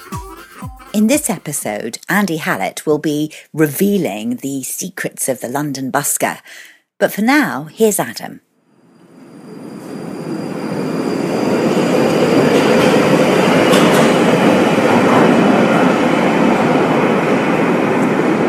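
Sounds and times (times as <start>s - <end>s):
speech: 1.0s - 8.5s
London Underground train rumbling along the tracks with rattling wheels: 8.7s - 18.4s.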